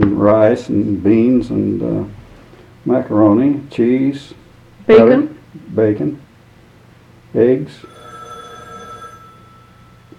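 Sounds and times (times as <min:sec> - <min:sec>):
speech: 0:00.0 - 0:02.2, 0:02.8 - 0:06.2, 0:07.3 - 0:08.0
low hum: 0:00.0 - 0:10.1
telephone ringing with a steady electronic tone: 0:07.8 - 0:10.1.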